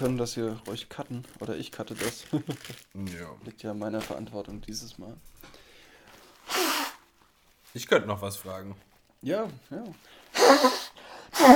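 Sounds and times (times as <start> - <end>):
speech: 0.0 - 5.6, 7.7 - 11.5
faint rustling: 0.0 - 10.4
quiet breathing: 5.4 - 7.0, 10.0 - 11.4
forceful nose blow: 6.2 - 7.1, 10.3 - 11.5.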